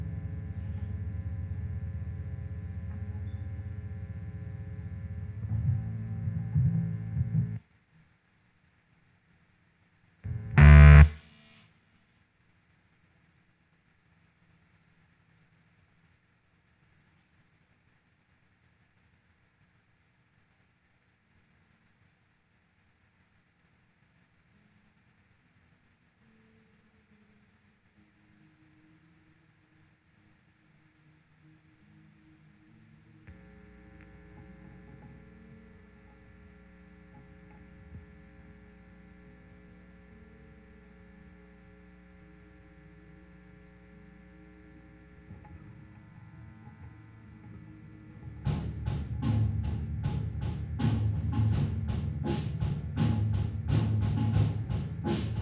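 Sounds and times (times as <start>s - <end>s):
bass: 0.0s - 7.6s, 10.3s - 11.2s, 33.3s - 55.4s.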